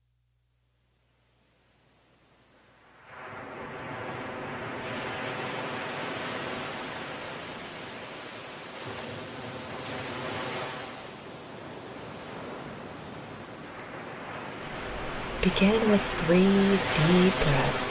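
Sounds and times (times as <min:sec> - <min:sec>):
ocean surf with breaking waves: 0:02.8 - 0:17.8
speech: 0:15.5 - 0:17.8.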